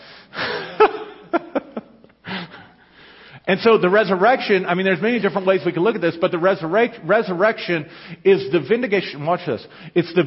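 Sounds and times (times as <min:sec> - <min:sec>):
person breathing audibly: 0:00.0 - 0:00.8, 0:02.2 - 0:03.5, 0:07.9 - 0:08.2, 0:09.7 - 0:10.0
speech: 0:03.5 - 0:10.2.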